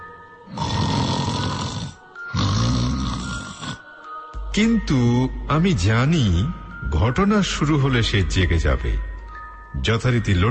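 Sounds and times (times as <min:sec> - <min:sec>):
person snoring deeply while asleep at night: 0:00.5 - 0:04.0
speech: 0:04.6 - 0:09.1, 0:09.8 - 0:10.4.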